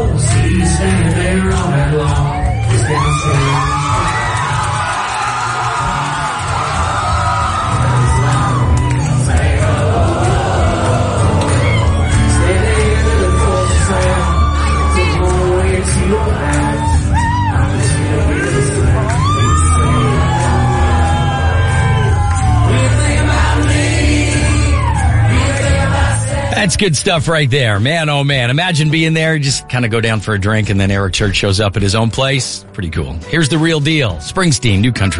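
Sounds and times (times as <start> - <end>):
large concert crowd cheering, whooping and shouting: 0.1 - 26.5
speech: 26.7 - 35.1.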